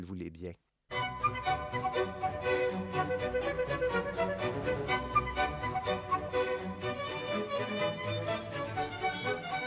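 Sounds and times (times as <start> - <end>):
speech: 0.0 - 0.6
lively baroque instrumental piece: 0.9 - 9.6.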